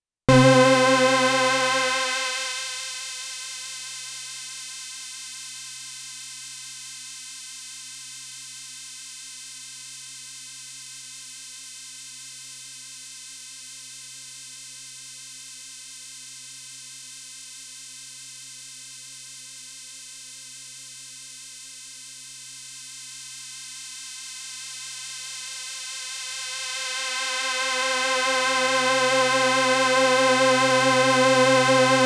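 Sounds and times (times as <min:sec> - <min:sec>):
Toraiz samples through a high-pass filter: 0:00.3 - 0:02.8, 0:28.0 - 0:32.0.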